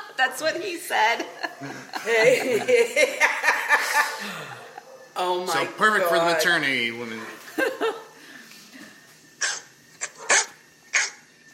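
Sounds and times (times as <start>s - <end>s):
speech: 0.2s - 4.6s, 5.2s - 8.0s
laughter: 1.0s - 4.9s, 7.4s - 8.1s
dog barking: 4.6s - 5.2s, 9.4s - 11.2s.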